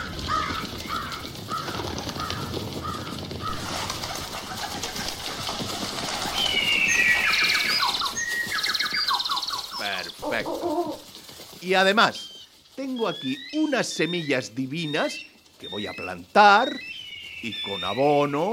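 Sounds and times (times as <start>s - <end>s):
birds cooing: 0.0s - 18.5s
bird whistling trills: 6.2s - 10.2s, 11.9s - 18.5s
speech: 11.7s - 18.5s.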